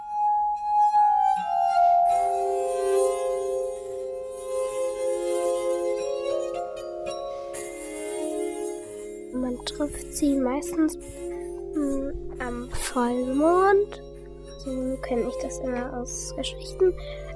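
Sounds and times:
simple slow melody on a glass harp: 0:00.0 - 0:17.3
speech: 0:09.8 - 0:17.3.

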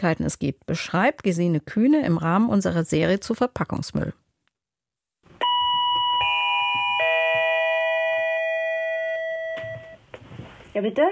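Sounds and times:
speech: 0:00.0 - 0:04.2, 0:10.8 - 0:11.1
doorbell chiming three ascending tones: 0:05.4 - 0:10.0.

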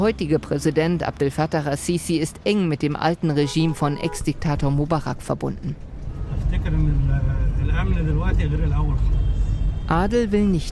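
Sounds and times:
speech: 0:00.0 - 0:05.9, 0:06.5 - 0:09.2, 0:09.9 - 0:10.6
car engine rumble in city traffic: 0:04.4 - 0:10.6.

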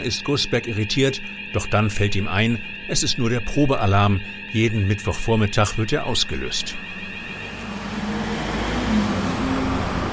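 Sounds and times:
speech: 0:00.0 - 0:07.0
vehicle driving through a tunnel: 0:06.7 - 0:10.1.

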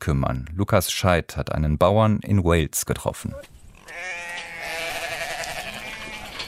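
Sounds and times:
speech: 0:00.0 - 0:04.3
sheep bleating at feeding time on a farm in Wales: 0:03.8 - 0:06.4.

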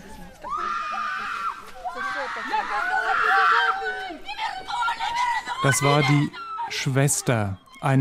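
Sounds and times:
woman screaming in anguish: 0:00.5 - 0:06.7
speech: 0:05.6 - 0:07.9.

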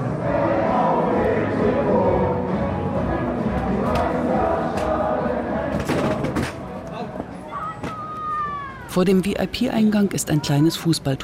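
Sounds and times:
football fans chanting and shouting in a packed fan-club pub: 0:00.0 - 0:07.2
speech: 0:09.0 - 0:11.2.

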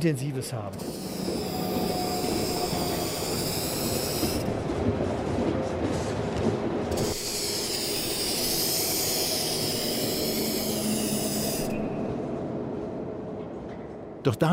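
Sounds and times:
steady rumbling noise: 0:00.0 - 0:14.5
spray can spraying paint onto glass panes: 0:00.8 - 0:04.5, 0:06.9 - 0:11.9.

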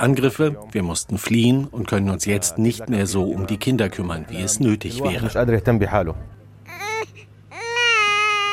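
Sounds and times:
speech: 0:00.0 - 0:06.4
newborn baby crying: 0:06.7 - 0:08.5.

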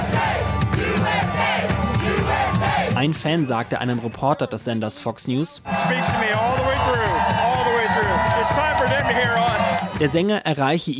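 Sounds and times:
concert crowd at an outdoor open-air concert chanting patriotic chants and cheering: 0:00.0 - 0:03.2, 0:05.6 - 0:10.0
speech: 0:03.0 - 0:07.1, 0:08.4 - 0:10.9.

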